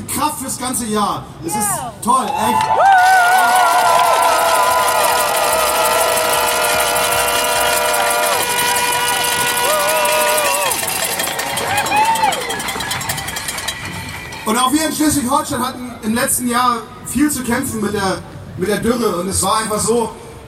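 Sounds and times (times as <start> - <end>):
speech: 0.2 - 3.8, 14.5 - 20.2
dense loud crowd cheering and whistling: 2.3 - 13.2.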